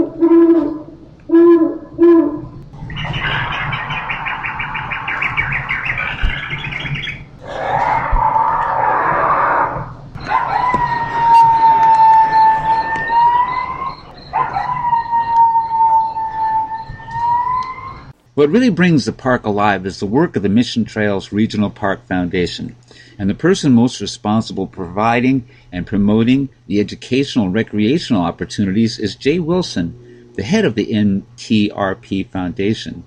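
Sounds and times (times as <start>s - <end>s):
owl hooting on an interactive wildlife display: 0.0s - 18.1s, 29.4s - 30.7s
recording of a coyote howling on an interactive wildlife display: 0.0s - 18.1s
harsh chattering bird calls on an interactive wildlife display: 2.9s - 7.8s, 10.2s - 18.0s
speech: 18.4s - 33.0s.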